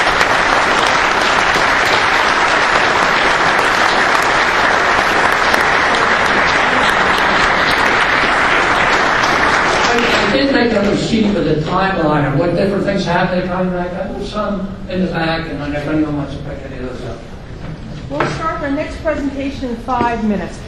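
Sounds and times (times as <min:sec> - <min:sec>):
audience applause at a presentation event: 0:00.0 - 0:11.1
speech: 0:10.6 - 0:16.5, 0:18.1 - 0:20.6.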